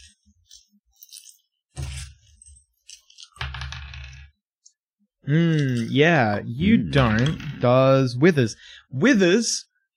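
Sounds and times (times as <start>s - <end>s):
dice rattling and tumbling across a hard surface: 3.2s - 4.4s
speech: 5.3s - 9.7s.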